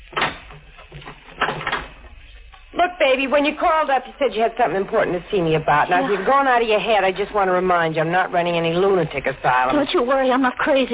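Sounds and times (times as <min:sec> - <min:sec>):
door shutting with a solid knock: 0:00.0 - 0:02.2
speech: 0:03.0 - 0:10.9.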